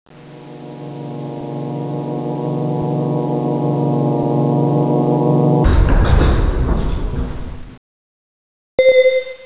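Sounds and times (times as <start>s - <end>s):
elevator rising: 0.8s - 7.8s.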